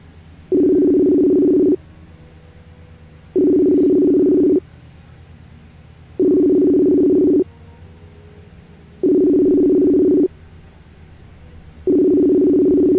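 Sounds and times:
telephone ringback tone as a call is placed: 0:00.5 - 0:01.8, 0:03.4 - 0:04.6, 0:06.2 - 0:07.5, 0:09.0 - 0:10.3, 0:11.9 - 0:12.9.

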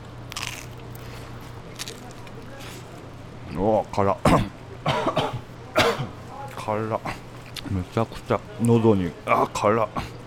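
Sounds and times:
crisp bites into pizza topped with red chili pepper, dried oregano and garlic powder: 0:00.0 - 0:03.0
low steady hum at a pizzeria: 0:00.0 - 0:10.2
speech: 0:03.6 - 0:04.6, 0:06.7 - 0:10.1.

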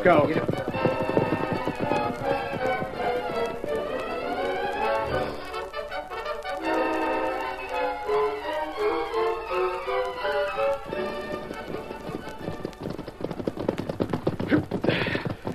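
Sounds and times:
speech: 0:00.0 - 0:00.9
horses' hooves clip-clopping while riding: 0:00.0 - 0:15.5
loud sweeping orchestral score: 0:00.2 - 0:12.4.

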